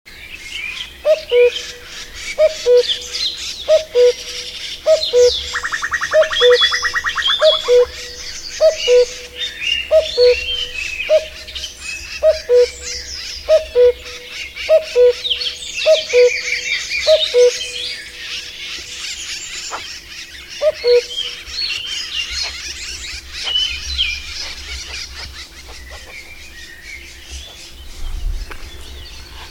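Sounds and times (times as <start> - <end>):
Cuculus canorus calling: 0.2 - 29.4.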